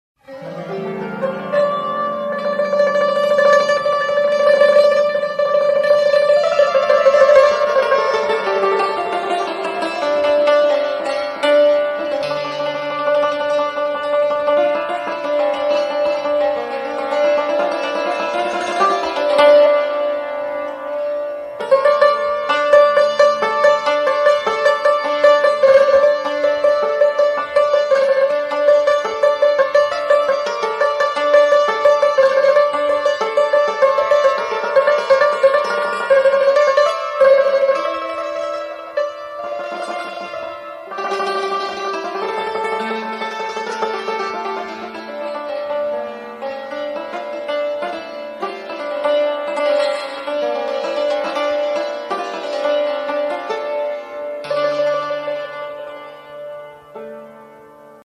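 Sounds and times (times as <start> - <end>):
santoor playing: 0.2 - 58.0.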